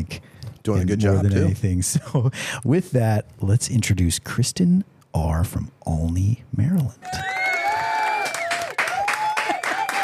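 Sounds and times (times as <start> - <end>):
speech: 0.1 - 7.3
audience clapping: 7.0 - 10.0.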